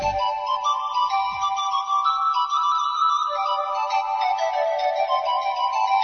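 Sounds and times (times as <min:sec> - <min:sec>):
bright chime-like electronic melody with sustained shifting tones: 0:00.0 - 0:06.0.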